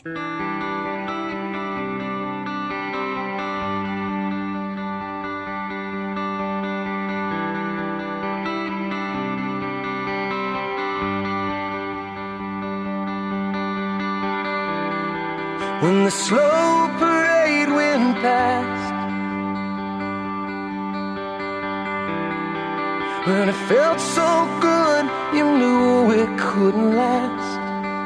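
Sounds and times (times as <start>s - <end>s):
pop rock song from a new album with dense guitars and a driving beat: 0.0s - 28.0s
speech: 15.8s - 17.1s, 23.3s - 27.6s.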